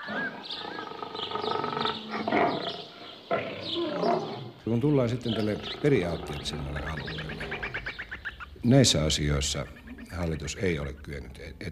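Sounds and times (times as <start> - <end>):
lion roaring: 0.0 - 7.9
speech: 4.7 - 7.6, 8.6 - 11.7.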